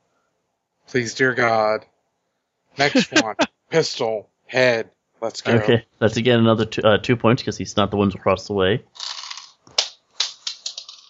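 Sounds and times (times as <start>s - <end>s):
speech: 0.9s - 1.9s, 2.8s - 9.1s
laughter: 2.8s - 3.5s, 5.4s - 5.8s
dice clattering across a hard surface in a game: 9.0s - 11.0s.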